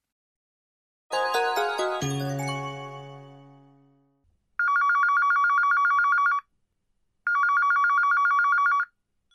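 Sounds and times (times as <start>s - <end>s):
bright chime: 1.1s - 3.9s
telephone ringing in trilling bursts: 4.6s - 6.4s, 7.3s - 8.9s.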